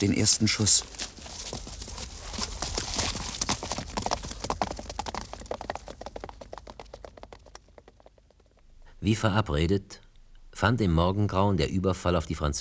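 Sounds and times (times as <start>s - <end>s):
speech: 0.0s - 1.3s, 9.0s - 10.0s, 10.6s - 12.6s
horse hooves clip-clopping as a rider rides off: 0.0s - 9.0s.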